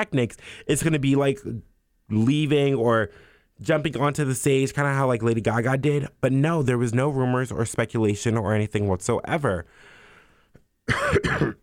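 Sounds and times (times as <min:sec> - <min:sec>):
speech: 0:00.0 - 0:09.9, 0:10.9 - 0:11.6
raspy throat-clearing cough: 0:10.9 - 0:11.6.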